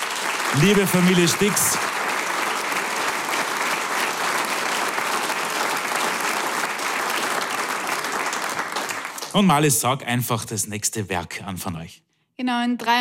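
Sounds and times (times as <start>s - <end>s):
sizable audience applauding: 0.0s - 10.0s
speech: 0.5s - 1.9s, 9.3s - 12.9s.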